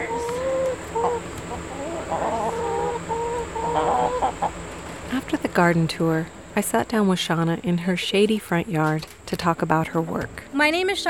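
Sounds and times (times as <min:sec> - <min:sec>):
chickens clucking in a garden chicken coop: 0:00.0 - 0:05.8
steady outdoor hum: 0:00.0 - 0:11.0
speech: 0:03.8 - 0:11.0.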